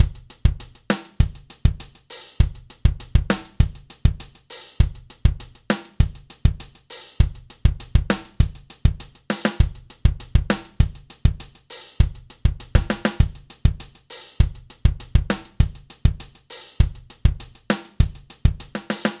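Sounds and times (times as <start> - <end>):
modified drum loop: 0.0 - 19.1.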